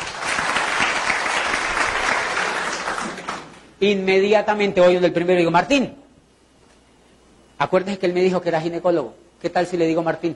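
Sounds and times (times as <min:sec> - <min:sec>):
audience applause for a presenter: 0:00.0 - 0:03.6
speech: 0:03.8 - 0:06.0, 0:07.6 - 0:10.3.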